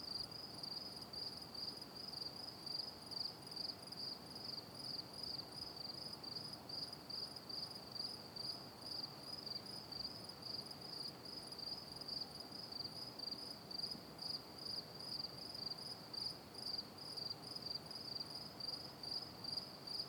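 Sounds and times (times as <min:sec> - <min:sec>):
cricket chirping at night: 0:00.0 - 0:20.0.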